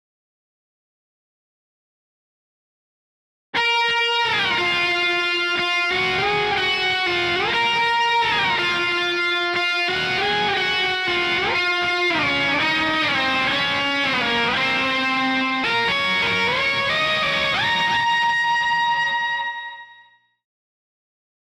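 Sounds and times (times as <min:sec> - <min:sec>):
bass guitar: 0:03.6 - 0:19.6.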